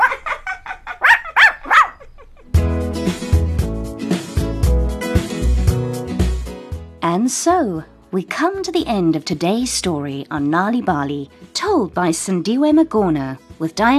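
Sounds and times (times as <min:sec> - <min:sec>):
dog barking: 0:00.0 - 0:02.2
bright music: 0:02.6 - 0:13.9
speech: 0:07.2 - 0:13.9.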